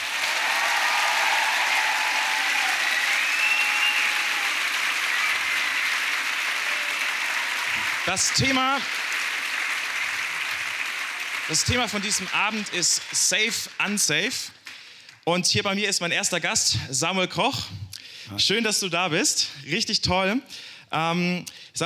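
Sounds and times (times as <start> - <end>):
talk show audience applause: 0.0 - 14.8
audience whoops and whistles: 2.2 - 4.5
speech: 8.1 - 9.0, 11.5 - 14.6, 15.2 - 21.8.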